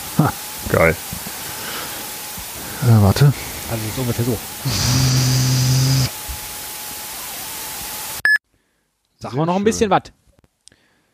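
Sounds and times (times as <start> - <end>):
loud static hiss on a phone or audio line: 0.0 - 8.3
speech: 0.2 - 1.1, 2.8 - 5.3, 9.2 - 10.2
low hum: 3.3 - 6.1.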